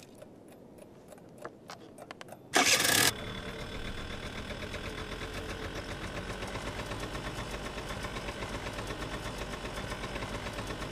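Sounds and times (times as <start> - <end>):
scooter engine starting: 2.5 - 10.9.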